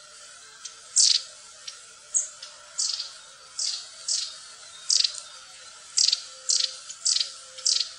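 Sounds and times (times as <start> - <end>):
steady background hiss: 0.0 - 7.9
long-tailed tit rasping high calls: 0.6 - 7.9.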